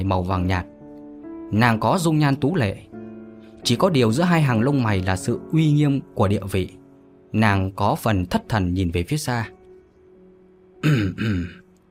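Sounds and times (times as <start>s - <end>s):
speech: 0.0s - 0.7s, 1.5s - 2.9s, 3.6s - 9.6s, 10.8s - 11.6s
grey-haired middle-aged man softly clearing throat: 10.8s - 11.7s.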